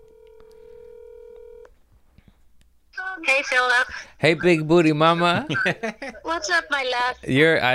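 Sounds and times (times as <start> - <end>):
phone call ringing tone on speaker: 0.0 - 1.6
speech: 3.2 - 7.7
laughter: 5.4 - 6.4.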